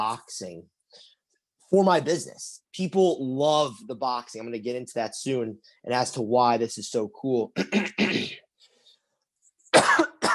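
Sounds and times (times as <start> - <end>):
speech: 0.0 - 8.4
person coughing: 7.6 - 8.4, 9.7 - 10.3
throat clearing: 7.6 - 8.4.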